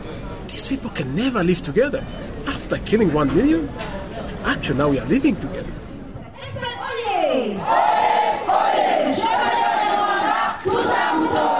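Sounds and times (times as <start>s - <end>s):
speech: 0.6s - 5.8s
large crowd cheering wildly at a political rally: 7.6s - 11.5s.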